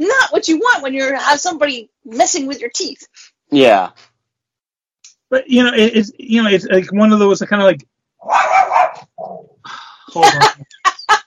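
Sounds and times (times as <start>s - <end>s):
speech: 0.0s - 4.1s, 5.3s - 8.5s, 9.2s - 10.7s
dog barking excitedly with some yelping: 8.2s - 9.4s
laughter: 9.7s - 11.2s.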